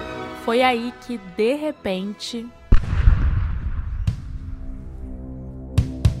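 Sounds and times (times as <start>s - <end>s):
speech: 0.4s - 2.6s
low droning hum: 2.6s - 5.8s
sharp cracking shots: 2.7s - 5.2s
heavy cannon boom: 2.7s - 6.0s.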